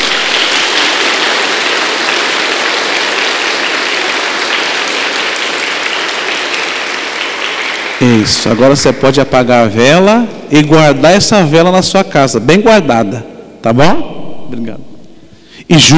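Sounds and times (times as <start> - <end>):
large crowd applauding during a religious ceremony: 0.0 - 9.3
speech: 8.2 - 14.9, 15.7 - 15.9.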